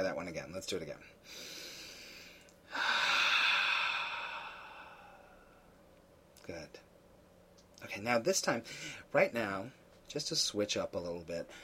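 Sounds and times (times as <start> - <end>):
speech: 0.0 - 1.6, 6.5 - 6.9, 7.8 - 11.6
slow deep breath as a breathing exercise: 1.2 - 5.8.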